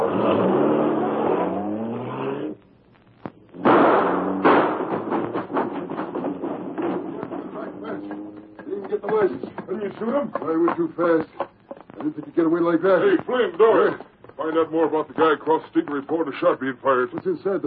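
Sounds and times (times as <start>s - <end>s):
car engine revving hard and accelerating: 0.0s - 2.6s, 3.5s - 9.0s
debris rattling: 3.5s - 12.5s
speech: 10.0s - 11.4s, 12.0s - 17.6s.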